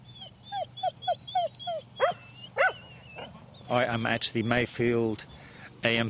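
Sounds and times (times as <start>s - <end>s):
farm dogs barking at showgrounds in Mid-Canterbury: 0.2s - 3.8s
speech: 3.7s - 6.0s.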